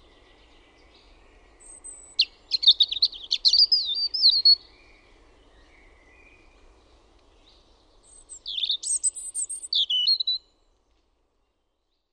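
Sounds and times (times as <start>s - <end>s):
European robin singing: 0.0s - 6.5s, 7.4s - 10.5s.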